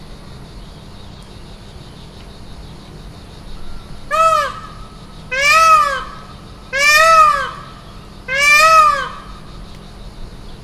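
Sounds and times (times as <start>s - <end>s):
close peacock at Makryammos beach on Thassos: 4.0s - 9.7s.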